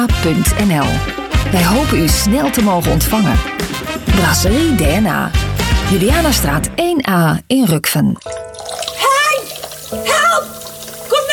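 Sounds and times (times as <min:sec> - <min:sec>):
speech: 0:00.0 - 0:08.3
water gushing onto a kitchen floor from a blocked kitchen drain: 0:08.2 - 0:11.3.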